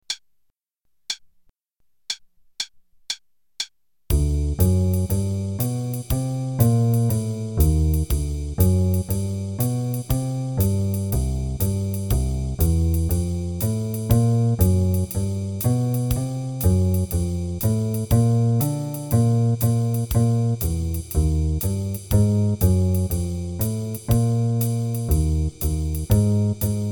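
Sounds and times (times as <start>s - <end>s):
jazz backing track with ii-V-I chord progressions: 4.1s - 26.9s.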